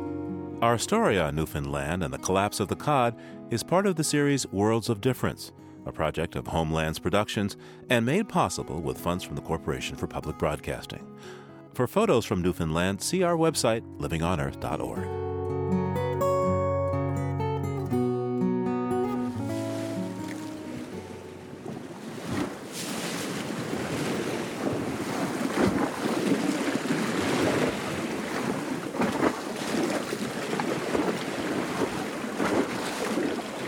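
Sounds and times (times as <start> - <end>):
speech: 0.6 - 15.2
melodic music: 13.5 - 21.6
waves washing onto the Adriatic Sea shore: 19.3 - 33.6
wind: 19.5 - 33.6.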